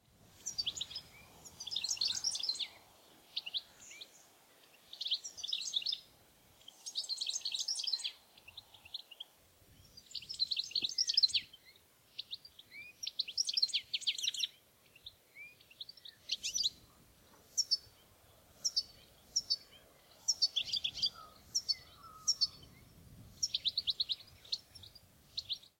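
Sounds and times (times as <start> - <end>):
goldfinch singing: 0.4 - 6.1, 6.7 - 25.7.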